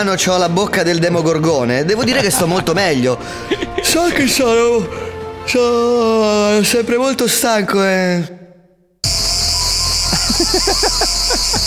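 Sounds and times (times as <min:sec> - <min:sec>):
speech: 0:00.0 - 0:08.4, 0:10.4 - 0:11.2
laughter: 0:01.9 - 0:05.0, 0:10.1 - 0:11.6
chorus of many cicadas buzzing: 0:09.0 - 0:11.6.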